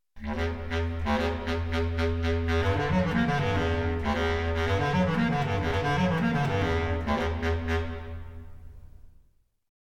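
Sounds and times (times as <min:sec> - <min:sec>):
bass clarinet: 0:00.2 - 0:08.6.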